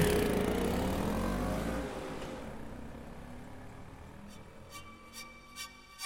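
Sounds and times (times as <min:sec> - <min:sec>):
two motorcycles slowing down and turning: 0:00.0 - 0:04.7.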